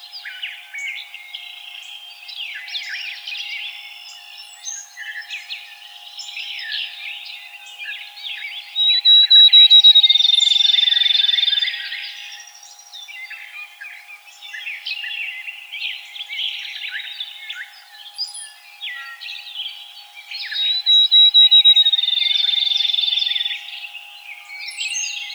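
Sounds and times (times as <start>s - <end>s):
field sparrow singing: 0.0s - 25.3s
other birds chirping: 8.5s - 11.6s, 19.6s - 25.3s.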